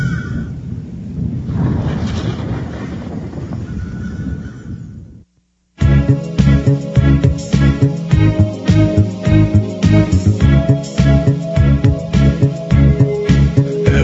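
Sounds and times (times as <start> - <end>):
thunder rumbling: 0.8 - 5.1
music: 5.8 - 14.0.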